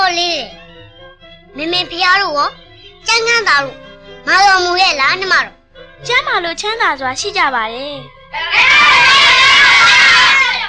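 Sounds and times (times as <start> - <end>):
speech: 1.6 - 9.2
many people screaming: 8.3 - 10.6.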